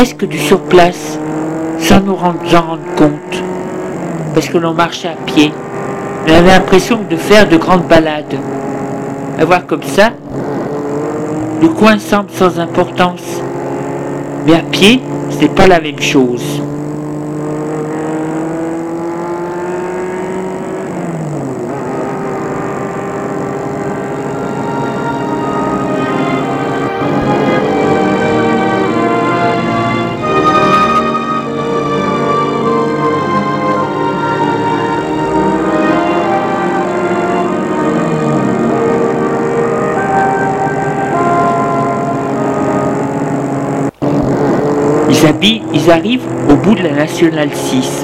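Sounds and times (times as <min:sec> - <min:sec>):
speech: 0:00.0 - 0:03.6, 0:04.4 - 0:08.8, 0:09.4 - 0:10.5, 0:11.6 - 0:13.6, 0:14.4 - 0:16.8, 0:45.2 - 0:48.0
car engine driving and slowing to stop at a bus stop: 0:00.0 - 0:48.0.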